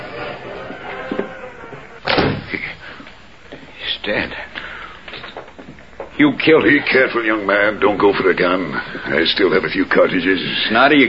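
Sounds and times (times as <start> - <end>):
steady hiss: 0.0 - 11.0
door slammed shut: 0.2 - 2.7
speech: 4.0 - 4.5, 6.2 - 11.0.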